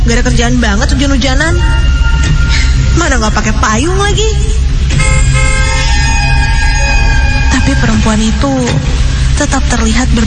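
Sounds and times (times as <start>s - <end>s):
speech: 0.1s - 2.4s, 3.0s - 5.5s, 7.8s - 10.2s
car horn honking in the rain: 4.9s - 8.0s.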